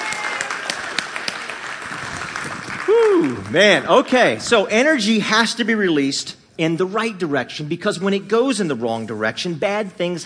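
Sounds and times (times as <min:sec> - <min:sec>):
crowd applauding: 0:00.0 - 0:04.0
speech: 0:02.9 - 0:10.2.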